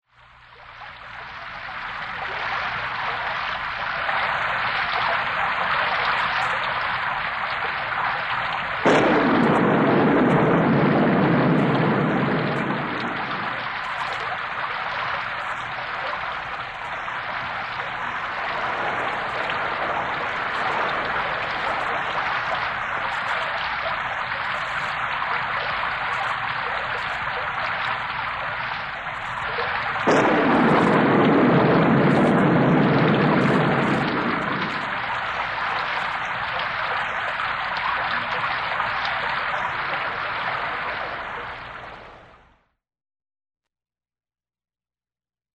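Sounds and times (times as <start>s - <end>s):
rain: 0.0s - 42.6s
thunder: 8.8s - 41.9s.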